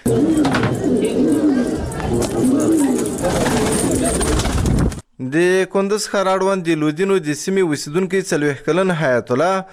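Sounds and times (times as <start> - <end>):
domestic pigeons cooing in Kunduz, Afghanistan: 0.0 - 5.0
noise: 0.0 - 9.7
speech: 5.4 - 9.7.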